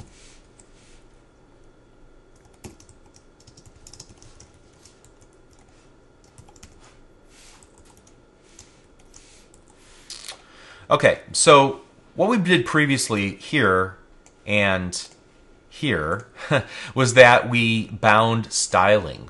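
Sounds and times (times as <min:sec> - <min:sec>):
typing on a computer keyboard: 0:02.4 - 0:06.8
speech: 0:10.9 - 0:19.2.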